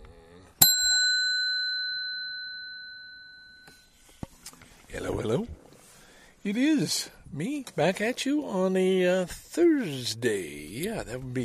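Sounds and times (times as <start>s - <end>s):
single bright bell strike: 0.6s - 3.9s
speech: 4.9s - 5.6s, 6.4s - 11.4s.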